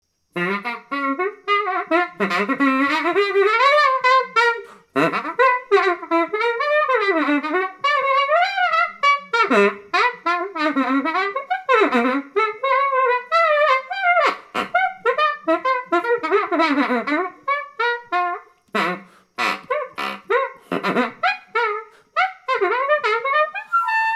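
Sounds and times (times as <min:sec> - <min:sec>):
saxophone tooting: 0:00.3 - 0:24.1.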